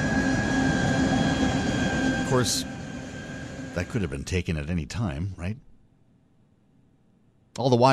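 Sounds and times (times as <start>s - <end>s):
wheels roaring on rails: 0.0s - 4.0s
high metallic whine: 0.0s - 4.7s
train loaded with tanks and armored vehicles rumbling past at high speed: 0.0s - 4.7s
speech: 2.3s - 2.7s, 3.8s - 5.7s, 7.6s - 7.9s.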